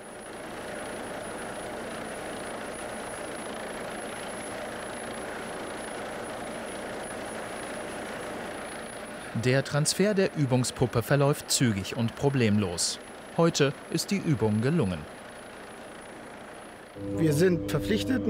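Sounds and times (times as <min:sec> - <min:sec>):
helicopter hovering with rotor and engine roar: 0:00.0 - 0:18.2
speech: 0:09.4 - 0:15.2, 0:17.0 - 0:18.2
constant high helicopter whine: 0:17.0 - 0:18.2.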